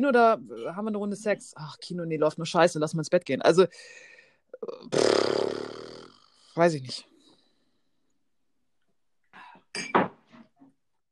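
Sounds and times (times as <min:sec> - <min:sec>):
speech: 0:00.0 - 0:05.4, 0:06.6 - 0:07.1, 0:09.8 - 0:10.0
glasses clinking in a toast: 0:09.7 - 0:10.2.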